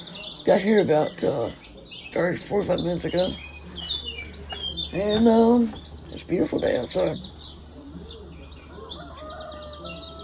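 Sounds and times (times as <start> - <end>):
birds chirping: 0.0 - 10.2
speech: 0.4 - 3.5, 4.9 - 7.3
rooster crowing outdoors: 8.6 - 10.2.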